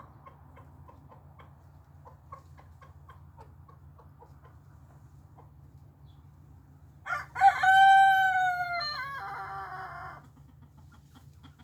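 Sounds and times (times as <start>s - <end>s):
rooster crowing: 7.1s - 10.2s.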